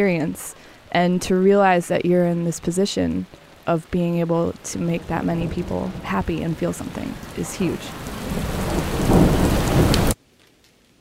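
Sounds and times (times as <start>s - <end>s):
speech: 0.0s - 8.9s
heavy downpour: 0.0s - 10.9s
thunder rumbling: 3.3s - 10.2s.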